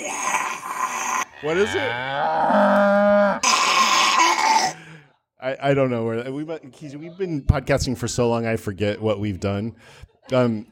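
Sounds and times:
cow mooing and bellowing: 0:01.2 - 0:04.3
speech: 0:01.4 - 0:03.5, 0:05.4 - 0:10.7.

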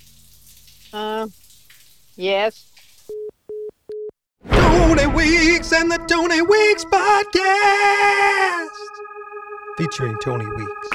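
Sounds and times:
shower water running: 0:00.0 - 0:03.1
speech: 0:00.9 - 0:01.4, 0:02.2 - 0:02.8, 0:04.7 - 0:08.9, 0:09.8 - 0:10.9.

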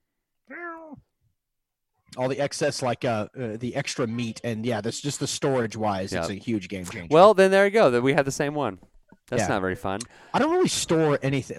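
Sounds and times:
cat meowing: 0:00.5 - 0:01.0
speech: 0:02.1 - 0:11.5.

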